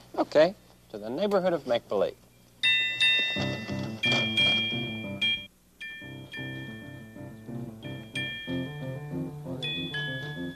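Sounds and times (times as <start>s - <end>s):
speech: 0.3s - 2.2s
small trolley bell ringing as it moves along its track: 2.6s - 10.5s
gentle steady musical accompaniment: 3.4s - 10.5s.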